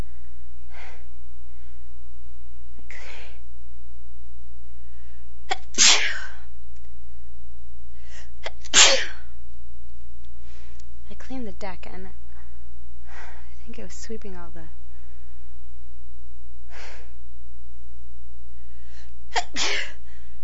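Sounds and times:
steady low hum: 0.0s - 20.4s
person sneezing: 2.9s - 3.4s, 5.5s - 6.4s, 8.4s - 9.2s, 19.4s - 20.0s
speech: 11.6s - 12.2s, 13.7s - 14.8s, 19.5s - 19.8s.

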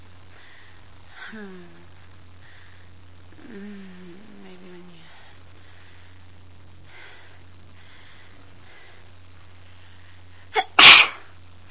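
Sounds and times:
speech: 1.3s - 1.8s, 3.4s - 3.9s
person sneezing: 10.5s - 11.3s.

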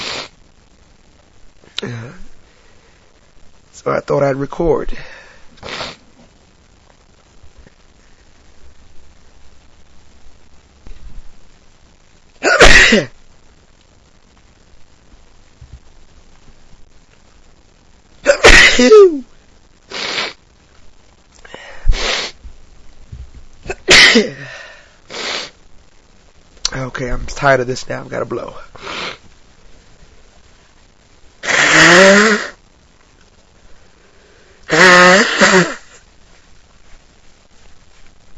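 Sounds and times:
speech: 1.8s - 2.3s, 3.8s - 5.8s, 12.9s - 13.1s, 27.4s - 28.9s
person sneezing set off by dust: 5.6s - 6.0s, 12.4s - 13.1s, 18.2s - 19.2s, 21.8s - 22.4s, 23.7s - 25.5s, 31.4s - 32.6s, 34.7s - 36.0s.

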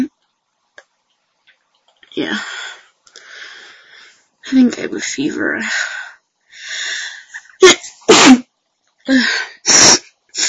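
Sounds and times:
speech: 2.2s - 2.8s, 4.5s - 5.9s
person sneezing with gasping intake of breath: 7.6s - 8.5s.

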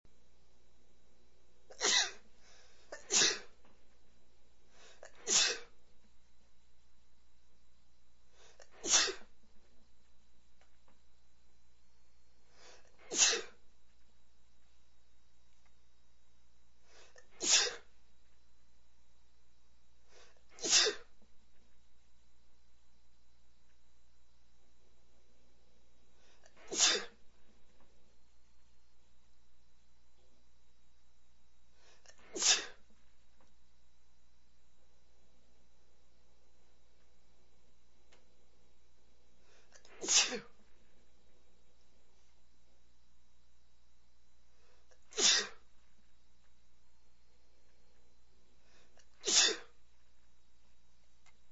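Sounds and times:
man sneezing: 1.7s - 2.2s, 3.0s - 3.5s, 5.0s - 5.7s, 8.6s - 9.3s, 13.0s - 13.6s, 17.1s - 17.9s, 20.5s - 21.1s, 26.5s - 27.2s, 32.1s - 32.8s, 39.8s - 40.5s, 45.1s - 45.6s, 49.2s - 49.8s.

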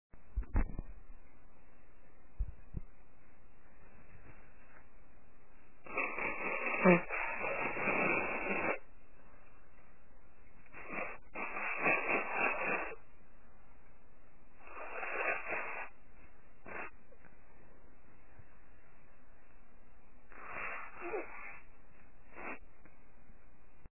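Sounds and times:
woman blowing medium strength: 5.8s - 8.9s, 10.7s - 13.0s, 14.6s - 16.0s, 16.6s - 17.0s, 20.3s - 22.6s.

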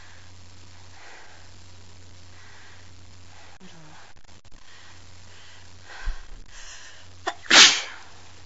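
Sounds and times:
soft breathing: 0.0s - 7.2s
single small sneeze: 7.2s - 8.1s.

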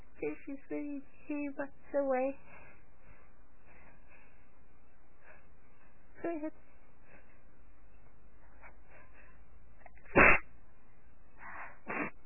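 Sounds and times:
speech: 0.2s - 2.6s, 6.2s - 6.6s
person sneezing: 10.2s - 10.4s, 11.9s - 12.2s.

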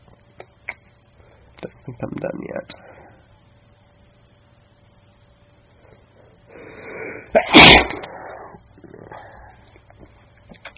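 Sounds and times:
faint breathing: 1.1s - 1.6s, 2.7s - 3.4s, 5.7s - 7.4s, 8.0s - 9.8s
speech: 1.8s - 3.0s
breathy intake: 5.9s - 9.7s
person sneezing: 6.9s - 9.4s.

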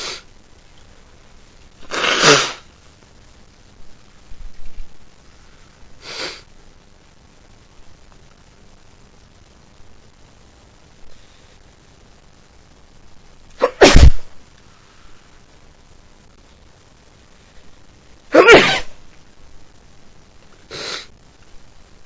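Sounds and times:
person sneezing: 1.8s - 2.6s, 13.6s - 14.3s, 18.3s - 19.0s, 20.7s - 21.1s.

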